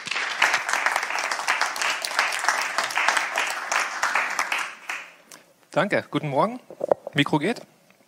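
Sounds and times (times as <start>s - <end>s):
room full of people applauding: 0.0s - 5.2s
speech: 5.8s - 7.6s.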